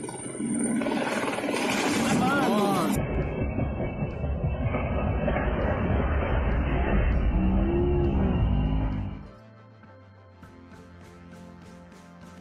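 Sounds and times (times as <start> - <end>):
medical helicopter landing in parking lot: 0.0 - 9.3
helicopter turbine whines: 0.0 - 9.4.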